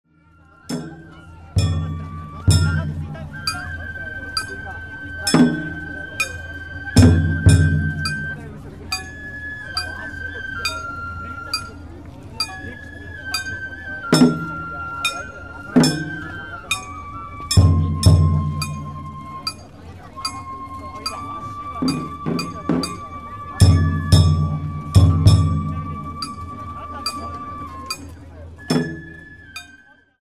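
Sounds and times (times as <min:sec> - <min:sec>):
hayashi festival ensemble music: 0:00.1 - 0:30.1.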